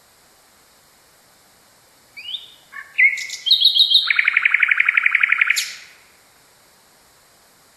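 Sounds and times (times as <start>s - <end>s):
common nightingale singing song variation: 2.1s - 6.2s.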